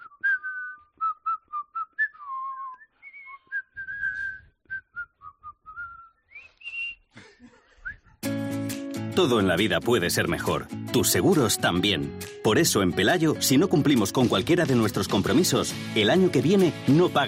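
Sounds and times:
stadium crowd whistling at a player: 0.0s - 7.1s
speech: 9.2s - 17.2s.

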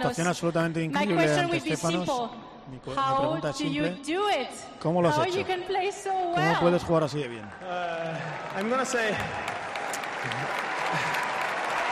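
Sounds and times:
speech: 0.0s - 9.5s
audience applause at a tennis match: 6.2s - 11.9s.

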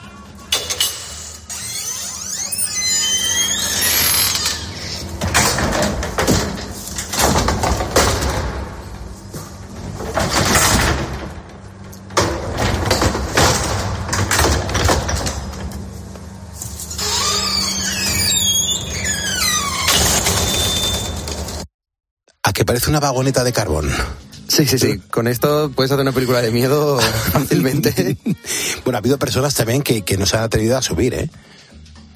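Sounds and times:
old elevator iron gates squealing and rattling as they slide: 0.0s - 8.7s, 9.7s - 15.8s, 16.7s - 21.6s, 25.7s - 27.6s
steady old elevator mechanical rumble: 0.0s - 21.7s
speech: 22.8s - 31.6s
laughter: 27.0s - 28.8s.

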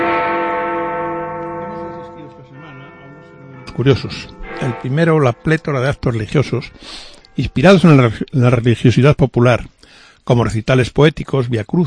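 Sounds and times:
large bell ringing: 0.0s - 8.8s
speech: 3.8s - 11.8s.

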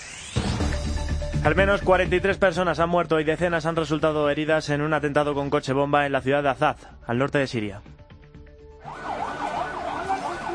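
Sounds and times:
speech: 1.4s - 8.0s
ambulance sirens wailing at a car-bomb explosion site: 8.8s - 10.5s.

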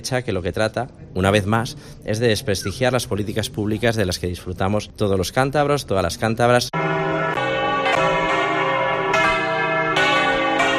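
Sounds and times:
speech: 0.0s - 6.9s
several church bells pealing together: 6.7s - 10.7s.

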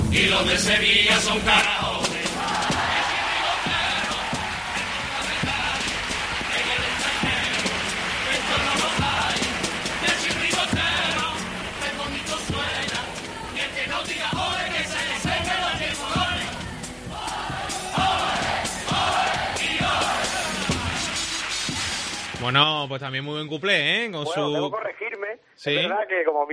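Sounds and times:
speech: 0.2s - 1.9s, 22.4s - 24.9s, 25.6s - 26.5s
large audience applauding: 1.5s - 22.6s
large audience cheering with shouts and whoops: 2.1s - 13.7s, 14.2s - 22.4s.

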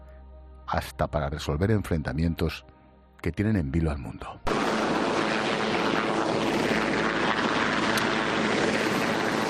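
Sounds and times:
speech: 0.7s - 4.6s
faint windy rush: 4.5s - 9.4s
helicopter flying overhead with whirring rotor noise: 4.5s - 9.4s.

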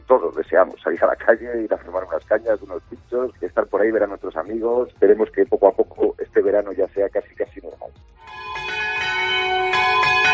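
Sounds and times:
speech: 0.1s - 8.6s
church bells ringing a resonant peal: 8.2s - 10.3s.

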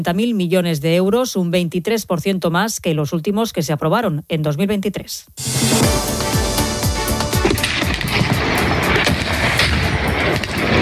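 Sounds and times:
speech: 0.0s - 5.9s
bombs exploding in the war between Pakistan and Afghanistan: 5.4s - 10.7s.

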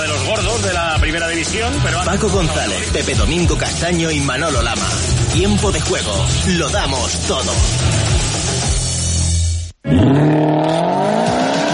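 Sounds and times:
car engine roaring as the car accelerates: 0.0s - 8.8s, 9.8s - 11.7s
speech: 0.6s - 8.4s, 9.8s - 10.8s.

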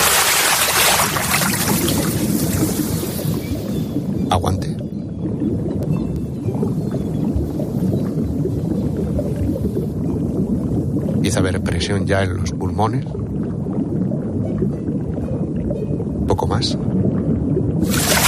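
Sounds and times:
splash of entering water: 0.0s - 2.8s, 17.8s - 18.2s
faint underwater bubbling: 0.0s - 18.2s
low underwater rumble: 0.0s - 18.2s
speech: 4.4s - 4.6s, 12.1s - 13.2s.

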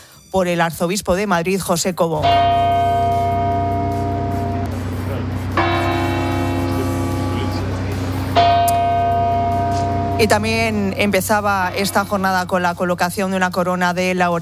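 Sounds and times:
speech: 0.3s - 3.0s, 10.2s - 14.4s
church bells tolling: 2.2s - 13.4s
low rumble of the street: 2.2s - 14.4s.

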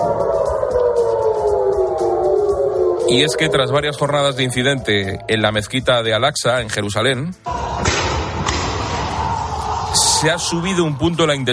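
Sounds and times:
air raid sirens wailing: 0.0s - 6.0s, 7.5s - 11.5s
speech: 3.1s - 7.9s, 10.2s - 11.5s.

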